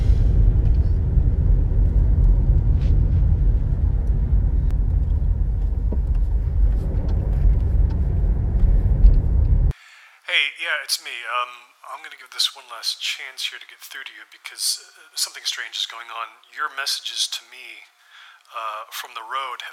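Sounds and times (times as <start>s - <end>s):
car driving on a road: 0.0s - 9.8s
speech: 10.8s - 19.7s.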